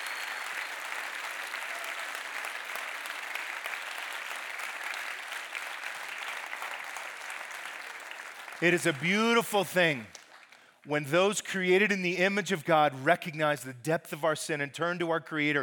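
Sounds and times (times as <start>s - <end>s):
audience clapping and applauding: 0.0s - 11.0s
speech: 8.6s - 10.2s, 10.9s - 15.6s.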